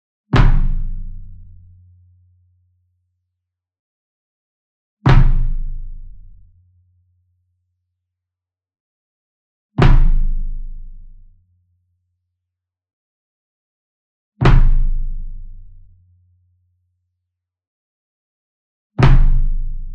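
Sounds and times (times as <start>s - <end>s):
marching bass drum flam with soft beater: 0.3s - 1.7s, 5.1s - 6.4s, 9.8s - 10.8s, 14.4s - 15.3s, 19.0s - 19.7s.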